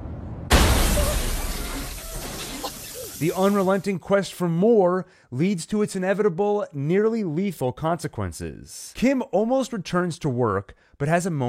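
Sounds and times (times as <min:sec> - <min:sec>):
car crash as a driver passes out at the wheel: 0:00.0 - 0:03.7
car glass shattering in a crash: 0:00.5 - 0:03.8
speech: 0:03.2 - 0:11.4.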